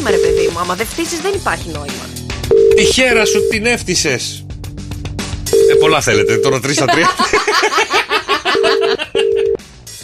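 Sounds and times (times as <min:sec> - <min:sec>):
phone ringing on the line for a radio wake-up call: 0:00.0 - 0:00.6, 0:02.5 - 0:03.6, 0:05.5 - 0:06.7, 0:08.5 - 0:09.6
speech: 0:00.6 - 0:04.4, 0:05.7 - 0:08.0
voice or laughter: 0:06.8 - 0:09.6.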